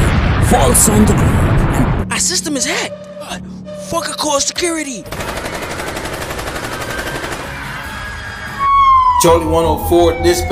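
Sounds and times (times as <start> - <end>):
speech: 0.5 - 5.6, 9.2 - 10.4
heavy rapid automatic gunfire: 5.1 - 7.8.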